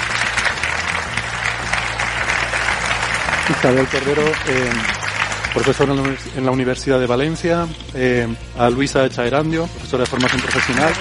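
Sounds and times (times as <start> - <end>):
audience applause at a science discussion: 0.0 - 6.6, 10.0 - 10.9
speech: 3.5 - 10.9.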